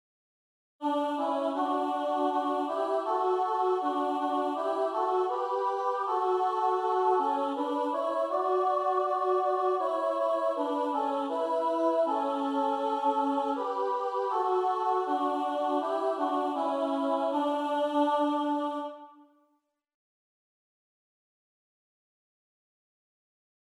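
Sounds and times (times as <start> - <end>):
sopranos singing: 0.8 - 19.1.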